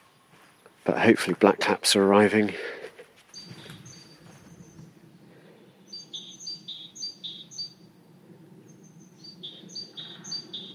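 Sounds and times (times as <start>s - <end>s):
low outdoor rumble: 0.0s - 5.9s, 6.8s - 10.7s
speech: 0.8s - 2.8s
great spotted woodpecker sharp calls: 3.3s - 4.9s, 5.9s - 7.8s, 8.7s - 10.7s
great tit repeating bright two-note phrases: 3.3s - 4.9s, 5.7s - 7.9s, 8.7s - 10.7s.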